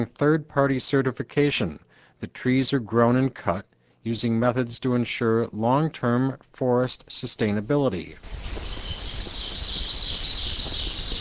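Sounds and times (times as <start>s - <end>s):
speech: 0.0s - 8.7s
birds singing in the canopy of a dense forest outside Kashina: 8.2s - 11.1s.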